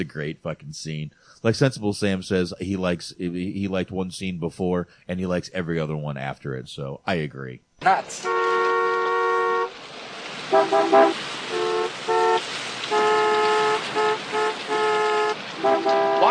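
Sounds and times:
speech: 0.0s - 8.5s, 10.5s - 11.2s
traffic noise: 7.8s - 16.2s
car horns honking: 7.9s - 9.8s, 10.4s - 16.2s.

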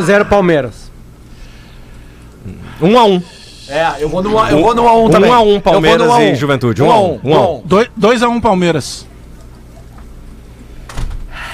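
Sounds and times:
speech: 0.0s - 0.8s, 2.4s - 9.1s
steady hiss of room noise: 0.0s - 11.5s
door swinging shut with a dull thud: 10.9s - 11.3s.

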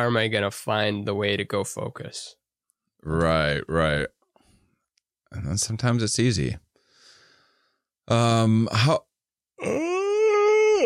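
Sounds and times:
speech: 0.0s - 2.4s, 3.0s - 4.2s, 5.3s - 6.6s, 8.1s - 9.9s
big loud human yawn: 9.6s - 10.8s.

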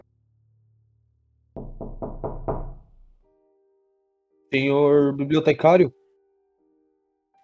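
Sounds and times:
firm knocking on a front door: 1.6s - 3.1s
speech: 4.5s - 6.0s.

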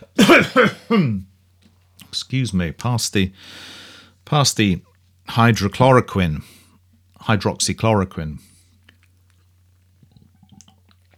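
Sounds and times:
harsh hacking coughs: 0.0s - 1.3s
speech: 0.2s - 1.3s, 2.1s - 6.6s, 7.2s - 8.5s.

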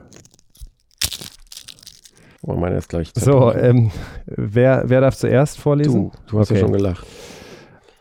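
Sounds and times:
fortune cookie being cracked open: 0.0s - 2.5s
speech: 2.4s - 7.4s.

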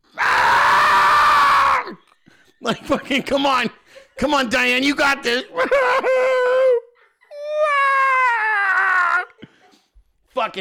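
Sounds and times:
voice imitating an elderly woman screaming in pain as she is lifted out of a chair: 0.1s - 2.0s, 6.2s - 9.4s
speech: 2.7s - 6.5s, 10.4s - 10.6s
laughter: 5.3s - 7.0s.

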